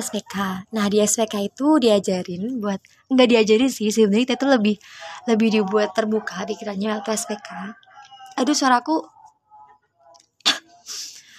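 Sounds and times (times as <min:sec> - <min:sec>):
speech: 0:00.0 - 0:09.2
person coughing: 0:10.5 - 0:10.8.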